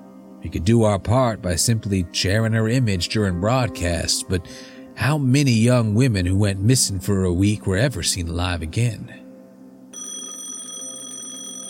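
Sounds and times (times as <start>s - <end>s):
speech: 0.4s - 9.2s
office telephone ringing: 10.0s - 11.6s.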